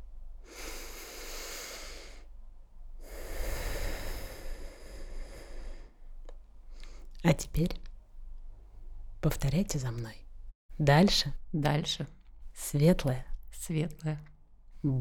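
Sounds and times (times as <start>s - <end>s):
long full exhale during a breathing exercise: 0.4s - 2.3s, 3.0s - 6.0s
slow deep breath drawn in during a breathing exercise: 0.4s - 2.3s, 3.0s - 6.1s
speech: 7.2s - 7.9s, 9.2s - 10.2s, 10.8s - 14.9s.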